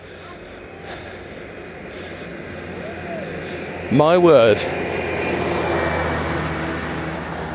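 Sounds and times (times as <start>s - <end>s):
gritter lorry driving past: 0.2s - 7.5s
speech: 3.9s - 4.9s.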